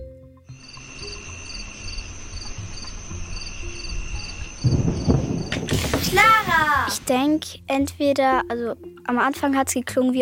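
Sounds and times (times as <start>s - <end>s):
crickets chirping on a summer night: 0.5s - 7.1s
speech: 6.2s - 10.1s.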